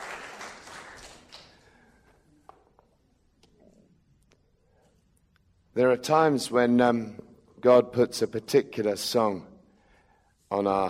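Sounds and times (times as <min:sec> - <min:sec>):
audience applause: 0:00.0 - 0:01.6
speech: 0:05.8 - 0:09.5, 0:10.5 - 0:10.8.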